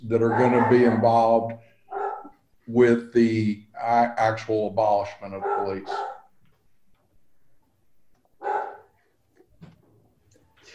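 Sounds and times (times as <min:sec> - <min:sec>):
speech: 0:00.0 - 0:01.7, 0:02.7 - 0:06.1
low noise: 0:00.0 - 0:10.7
dog barking: 0:00.2 - 0:01.2, 0:01.9 - 0:02.4, 0:05.4 - 0:06.3, 0:08.4 - 0:09.0.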